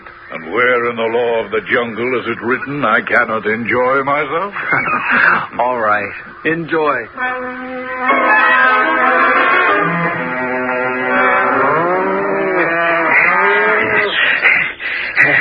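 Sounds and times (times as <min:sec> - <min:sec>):
speech: 0:00.3 - 0:08.7
laughter: 0:04.5 - 0:06.3, 0:12.6 - 0:15.3
herd of cattle and buffalo lowing while being separated: 0:09.8 - 0:15.3.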